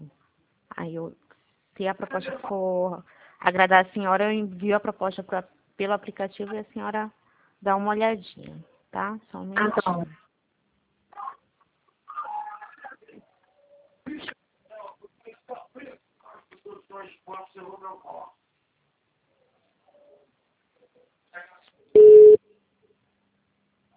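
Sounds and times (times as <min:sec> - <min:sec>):
speech: 0:00.8 - 0:01.2, 0:01.8 - 0:10.2
quiet talk: 0:11.1 - 0:18.4, 0:19.2 - 0:21.9
telephone busy tone after a dropped phone call: 0:22.0 - 0:22.4.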